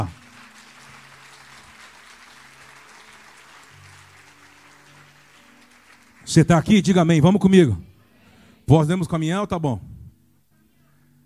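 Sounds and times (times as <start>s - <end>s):
large crowd at a religious gathering applauding: 0.0s - 7.2s
speech: 6.3s - 7.9s, 8.7s - 9.9s.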